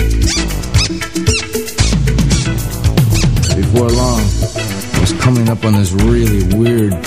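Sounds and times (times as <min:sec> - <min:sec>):
loud dense brassy music: 0:00.0 - 0:06.5
shoes squeaking: 0:00.2 - 0:03.7
speech: 0:05.6 - 0:07.0.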